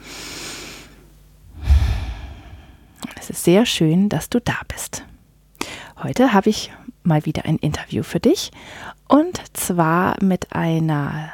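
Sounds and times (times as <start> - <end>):
deep breath in and out: 1.5 - 3.0
speech: 3.2 - 5.1, 6.0 - 11.3.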